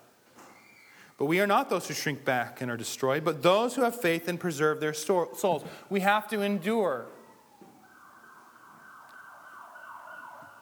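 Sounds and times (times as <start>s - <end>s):
speech: 1.2s - 7.2s
ambulance siren wailing from outside, muffled by distance and walls: 6.2s - 10.6s.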